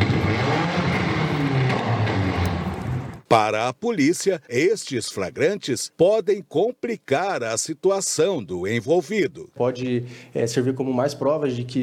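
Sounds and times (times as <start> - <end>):
car engine revving during dangerous maneuvers: 0.0 - 3.2
speech: 3.3 - 11.8.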